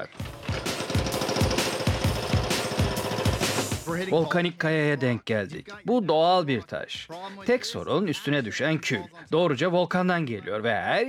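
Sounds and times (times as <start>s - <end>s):
speech: 0.0s - 0.7s, 3.9s - 11.0s
one-ton hydraulic hammer breaking hard rock: 0.2s - 3.7s.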